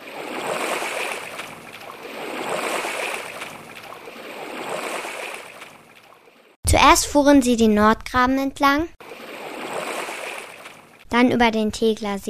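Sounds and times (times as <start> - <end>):
oars of a rowing boat splashing and swishing through water: 0.0 - 6.6, 9.0 - 11.1
speech: 6.9 - 9.0, 11.1 - 12.2.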